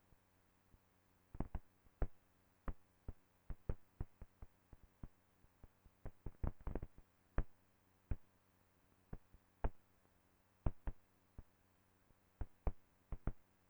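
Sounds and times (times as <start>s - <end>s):
crackle and pop noise in Bluetooth HFP audio: 1.4s - 8.3s, 10.6s - 11.5s, 12.4s - 13.4s.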